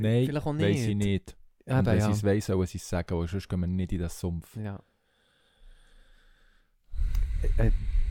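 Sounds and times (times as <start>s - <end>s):
speech: 0.0s - 4.9s, 7.4s - 8.0s
long deep breath drawn in through the nose: 5.0s - 8.0s.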